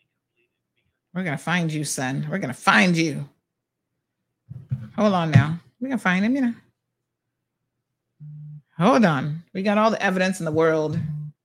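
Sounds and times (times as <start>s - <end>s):
speech: 1.2s - 3.4s, 5.0s - 6.6s, 8.8s - 11.1s
telephone busy signal on unanswered call: 8.2s - 8.6s, 11.0s - 11.3s.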